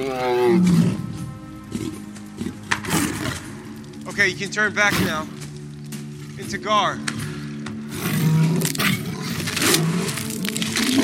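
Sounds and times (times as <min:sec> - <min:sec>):
speech: 0:00.0 - 0:00.8, 0:04.2 - 0:05.4, 0:06.5 - 0:07.2
deep loud tiger roar trailing into growls: 0:00.0 - 0:03.9, 0:07.9 - 0:11.0.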